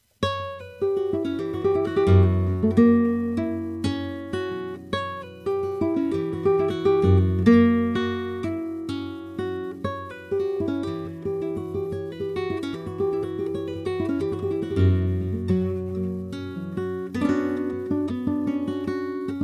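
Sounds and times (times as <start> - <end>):
flamenco guitars playing a solea: 0.2 - 19.4.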